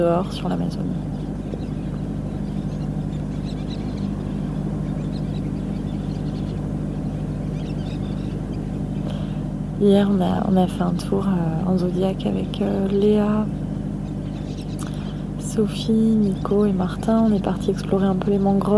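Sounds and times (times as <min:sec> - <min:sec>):
speech: 0:00.0 - 0:01.2, 0:09.8 - 0:13.6, 0:15.6 - 0:18.7
steady low rumble: 0:00.0 - 0:18.7
birds calling and chirping in the forest by the Amazon River: 0:00.8 - 0:09.3, 0:12.3 - 0:18.7.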